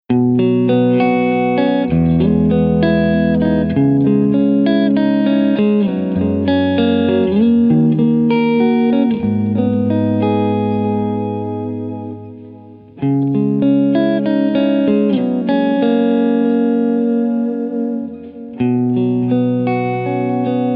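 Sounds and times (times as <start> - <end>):
Ibanez S470 electric guitar through Fender Pro Reverb amplifier: 0.1 - 20.7.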